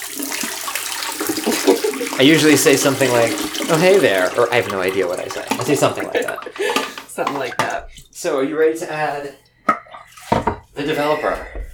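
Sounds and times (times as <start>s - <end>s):
pre-soak water pouring out of a small film tank: 0.0s - 8.0s
laughter: 1.3s - 2.7s, 5.6s - 7.2s
speech: 1.5s - 9.4s, 10.8s - 11.6s.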